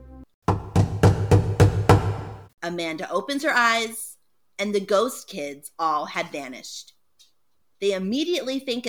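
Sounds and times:
firm knocking on a wooden door: 0:00.5 - 0:02.5
speech: 0:02.7 - 0:07.0, 0:07.8 - 0:08.8.

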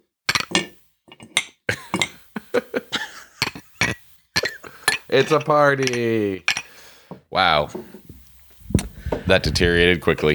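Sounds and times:
glasses clinking in a toast: 0:00.3 - 0:02.3, 0:03.0 - 0:06.8
laughter: 0:01.7 - 0:03.8, 0:04.6 - 0:05.7
speech: 0:05.1 - 0:06.5, 0:07.3 - 0:08.0, 0:09.3 - 0:10.3.

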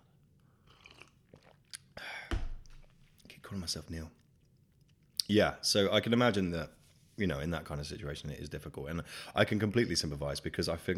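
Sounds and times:
louder swallow and gulp: 0:00.6 - 0:03.0
sipping of water: 0:00.6 - 0:03.3
speech: 0:03.5 - 0:04.2, 0:05.3 - 0:10.9.

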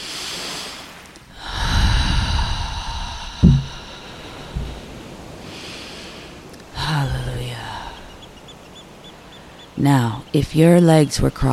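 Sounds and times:
deep breath in through nose and out through mouth: 0:00.0 - 0:06.9
brief low thumps: 0:02.5 - 0:05.0
speech: 0:09.8 - 0:11.5.

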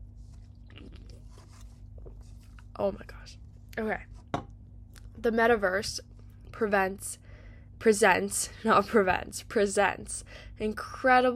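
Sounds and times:
person sipping and swallowing a drink: 0:00.4 - 0:02.6
speech: 0:02.8 - 0:04.1, 0:05.2 - 0:07.2, 0:07.8 - 0:11.3.

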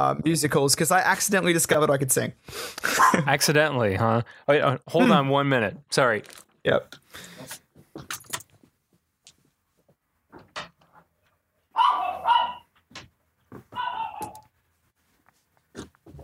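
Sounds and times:
speech: 0:00.0 - 0:08.2
light clattering and jingling: 0:08.0 - 0:08.7
dog barking under a bed: 0:11.8 - 0:12.7, 0:13.8 - 0:14.4.

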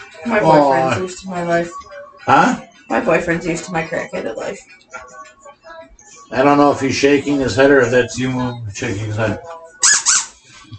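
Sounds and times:
speech: 0:00.2 - 0:05.2, 0:06.3 - 0:09.6
rubber squeaky toy being squeezed: 0:09.7 - 0:10.4.

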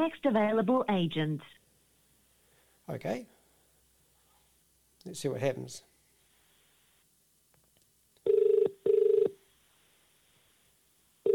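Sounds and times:
speech: 0:00.0 - 0:01.6, 0:02.9 - 0:03.3, 0:05.0 - 0:05.9
ringback tone of an outgoing phone call: 0:08.3 - 0:09.4.

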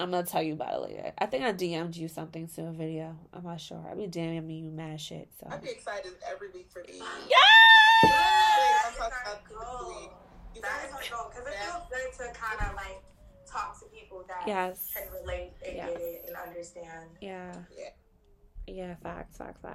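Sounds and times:
speech: 0:00.0 - 0:18.0, 0:18.7 - 0:19.7
baby screaming and crying: 0:07.3 - 0:08.9.

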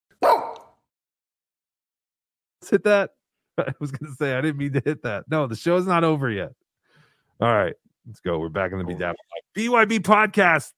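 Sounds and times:
dog barking: 0:00.2 - 0:00.8
speech: 0:02.6 - 0:06.6, 0:07.4 - 0:10.7
laughter: 0:03.6 - 0:05.1, 0:08.8 - 0:09.4.

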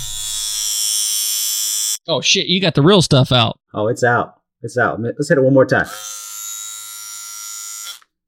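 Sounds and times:
electric ball trimmer buzzing: 0:00.0 - 0:02.0, 0:05.9 - 0:08.2
speech: 0:02.1 - 0:06.1.

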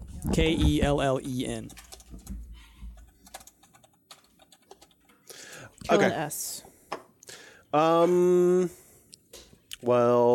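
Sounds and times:
keyboard typing as someone enters a name: 0:00.0 - 0:05.7
speech: 0:00.3 - 0:01.8, 0:05.9 - 0:06.7, 0:07.7 - 0:08.8, 0:09.8 - 0:10.3.

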